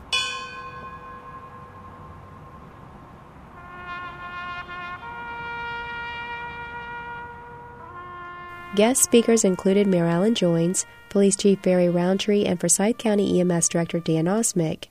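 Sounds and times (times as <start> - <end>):
firehouse bell struck at a memorial ceremony: 0.0 - 3.2
speech: 8.7 - 14.8.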